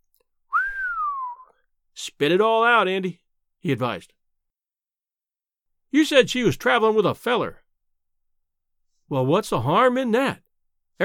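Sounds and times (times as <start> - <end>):
man whistling a single long low gliding whistle: 0.5 - 1.6
speech: 2.2 - 4.2, 5.9 - 7.6, 9.1 - 10.4.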